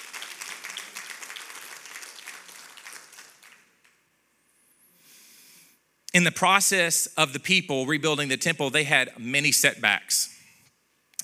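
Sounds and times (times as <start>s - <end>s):
crowd clapping in praise to God: 0.0s - 4.0s
faint hiss: 3.4s - 6.5s
speech: 6.2s - 10.4s.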